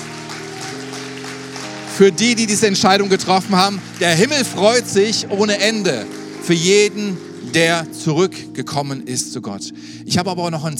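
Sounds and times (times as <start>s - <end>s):
crowd applauding after a prayer: 0.0s - 8.1s
speech: 2.0s - 10.7s.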